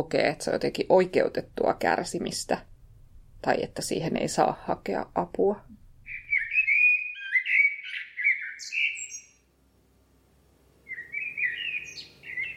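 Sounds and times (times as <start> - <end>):
speech: 0.0 - 2.7, 3.4 - 5.7
common blackbird singing at dawn: 6.1 - 9.5, 10.8 - 12.5.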